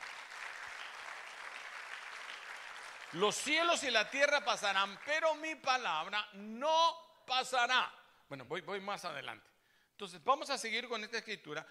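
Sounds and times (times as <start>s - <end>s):
audience applauding: 0.0s - 5.3s
speech: 3.1s - 11.6s.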